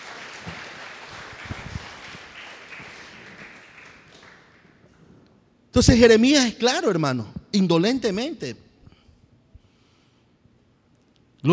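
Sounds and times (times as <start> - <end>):
congregation applauding: 0.0 - 5.0
speech: 5.8 - 8.6.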